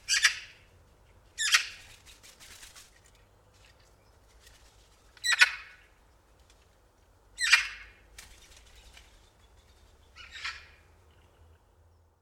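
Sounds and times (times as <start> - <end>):
Eurasian magpie Pica pica calling: 0.0 - 0.6, 5.2 - 5.9, 7.4 - 8.0, 10.2 - 10.8.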